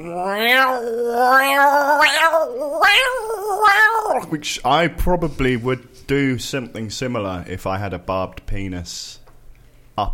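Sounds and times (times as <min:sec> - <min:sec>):
human voice imitating a cat's yowl: 0:00.0 - 0:04.3
speech: 0:00.0 - 0:09.2, 0:10.0 - 0:10.1.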